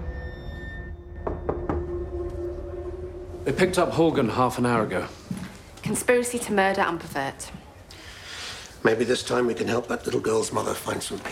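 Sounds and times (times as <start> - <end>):
knocking on an office door: 1.2 - 2.0
speech: 3.4 - 5.2, 5.9 - 7.6, 8.8 - 11.2.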